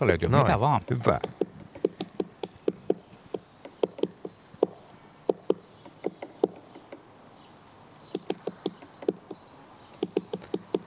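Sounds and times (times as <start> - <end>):
speech: 0.0 - 1.4
great spotted woodpecker tapping on wood: 0.8 - 7.1, 8.1 - 9.4, 10.0 - 10.8.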